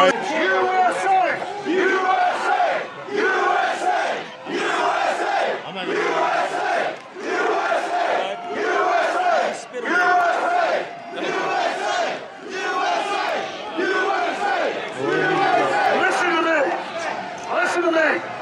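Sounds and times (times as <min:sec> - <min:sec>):
large protest crowd shouting and chanting in unison: 0:00.0 - 0:18.3.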